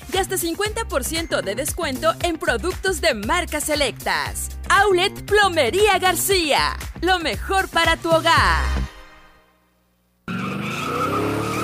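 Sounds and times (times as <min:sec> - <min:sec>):
speech: 0:00.2 - 0:08.8
drag-racing car tires screeching: 0:10.3 - 0:11.6
eighth-mile drag-racing car engines roaring at a racetrack: 0:10.3 - 0:11.6.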